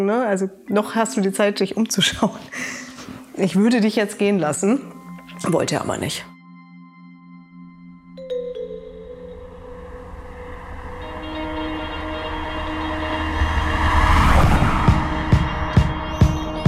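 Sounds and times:
speech: 0.0s - 6.3s
car engine rumble while driving to the Baltic Sea on a sunny September day: 9.9s - 16.6s.

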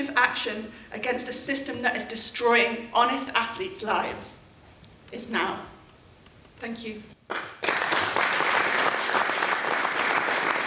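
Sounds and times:
speech: 0.0s - 4.4s, 5.1s - 5.7s, 6.6s - 7.6s
large audience standing ovation applause: 7.3s - 10.6s.

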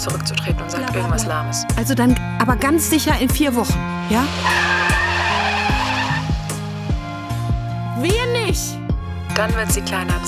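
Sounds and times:
speech: 0.0s - 5.0s, 9.4s - 10.2s
car engine accelerating away hard: 2.5s - 8.4s.

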